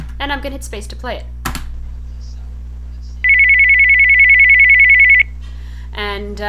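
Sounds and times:
faint low hum: 0.0 - 6.4
speech: 0.2 - 1.4, 5.9 - 6.4
electronic home phone ringtone assigned as Skype ring: 3.2 - 5.3.

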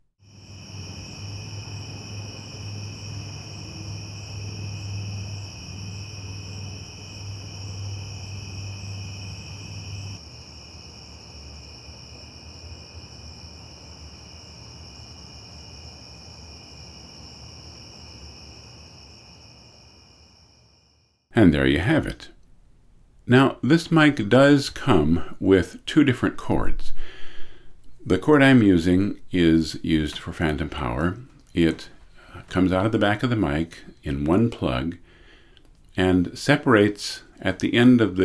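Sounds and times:
crickets trilling recorded with stereo microphone in mid-side position: 0.2 - 21.3, 26.5 - 38.2
speech: 21.4 - 22.4, 23.3 - 27.2, 28.0 - 35.0, 36.0 - 38.2.

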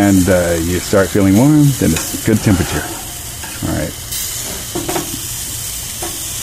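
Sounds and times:
hamburger patties sizzling on a grill: 0.0 - 6.4
speech: 0.1 - 3.0
spatula scraping while flipping burgers: 1.8 - 3.7.

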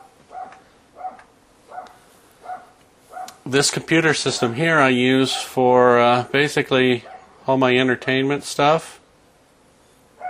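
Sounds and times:
small dog yipping upstairs in a house: 0.0 - 3.4
speech: 3.5 - 9.0.

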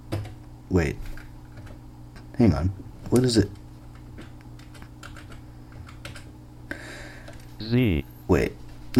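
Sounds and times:
speech: 0.7 - 1.2, 2.4 - 3.6, 7.6 - 8.9
computer keyboard key presses: 3.1 - 6.3.

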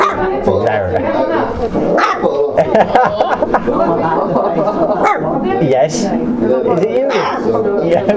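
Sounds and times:
several dogs barking and yipping at a person: 0.0 - 0.3, 1.9 - 2.6, 5.0 - 5.3, 7.0 - 7.5
laughter: 1.1 - 5.6, 7.4 - 8.1
speech: 5.6 - 8.1.

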